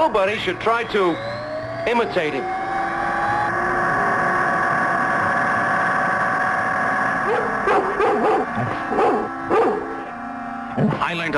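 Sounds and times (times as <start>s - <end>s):
speech: 0.0s - 2.6s, 10.8s - 11.3s
droning engine hum: 0.0s - 11.3s
dog barking: 7.3s - 9.9s.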